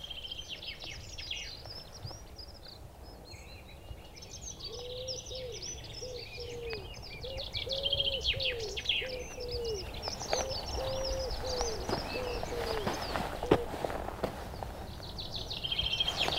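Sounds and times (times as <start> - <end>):
smaller birds chirping and twittering: 0.0 - 16.3
wood pigeons cooing: 4.6 - 16.3.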